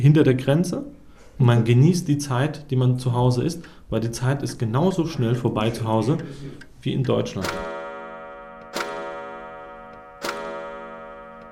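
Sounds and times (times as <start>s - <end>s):
speech: 0.0s - 7.8s
old wall clock ticking: 6.0s - 11.4s
steady metallic ringing: 7.4s - 11.4s.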